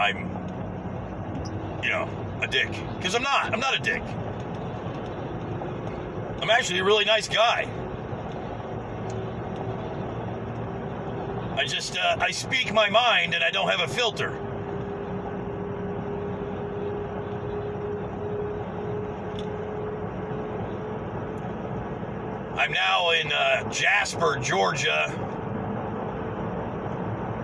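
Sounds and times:
work truck with trailer road rumble with tire and engine noise: 0.0s - 27.4s
speech: 0.1s - 0.4s, 1.8s - 4.3s, 6.4s - 7.8s, 11.6s - 14.4s, 22.7s - 25.2s.

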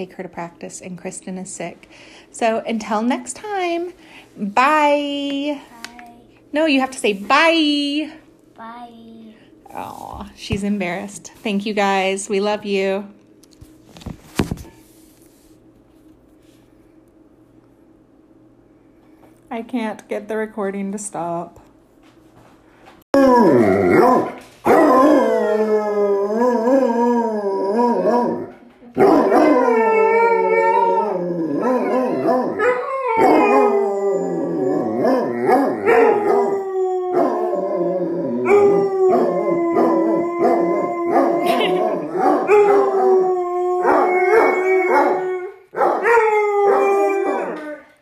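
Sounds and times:
speech: 0.0s - 5.8s, 6.5s - 9.0s, 9.7s - 13.2s, 19.5s - 21.6s, 23.2s - 25.2s
two dogs howling: 23.2s - 47.9s.

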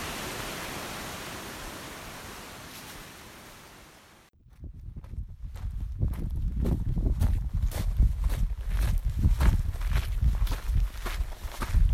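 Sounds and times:
footsteps walking over ridges of piled-up cooled lava rock: 4.9s - 11.9s.

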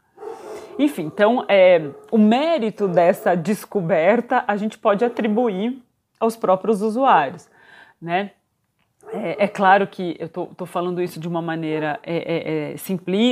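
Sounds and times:
dog barking: 0.2s - 3.4s, 9.0s - 9.6s
speech: 0.8s - 8.4s, 9.0s - 13.3s.

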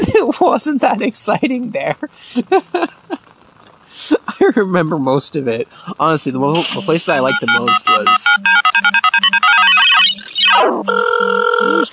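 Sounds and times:
speech: 0.2s - 3.0s, 4.0s - 9.0s, 10.5s - 11.9s
electronic phone ringtone for an incoming call: 6.7s - 11.9s.

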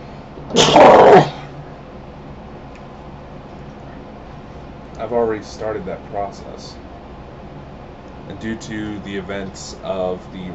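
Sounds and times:
speech: 0.5s - 1.4s, 5.1s - 6.9s, 8.3s - 10.5s
sneeze: 0.5s - 1.5s.

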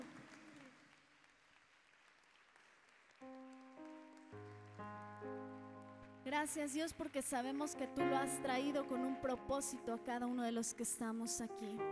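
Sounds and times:
congregation applauding: 0.0s - 7.2s
speech: 6.3s - 11.9s.

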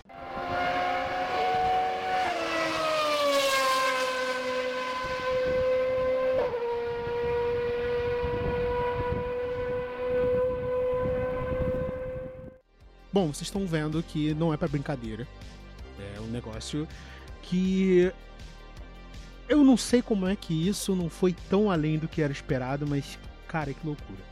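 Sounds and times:
HSV010 GT race car engine roaring: 0.0s - 12.6s
speech: 13.2s - 15.6s, 16.2s - 18.4s, 19.5s - 24.2s.

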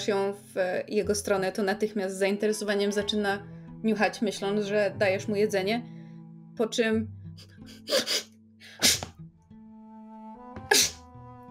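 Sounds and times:
speech: 0.0s - 6.0s, 6.6s - 9.0s
person sneezing: 7.8s - 9.2s, 10.7s - 11.0s.

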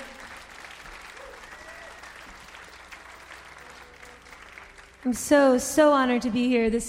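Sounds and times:
large crowd clapping at an outdoor festival: 0.0s - 5.8s
faint whoops and voices from the crowd: 1.1s - 2.4s
speech: 5.0s - 6.8s.

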